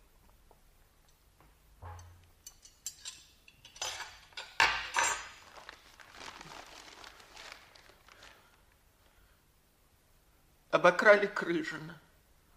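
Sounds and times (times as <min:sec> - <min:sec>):
cutlery clinking and scraping against dishes while cutting walnut cake: 0:01.8 - 0:05.4
speech: 0:10.8 - 0:12.1.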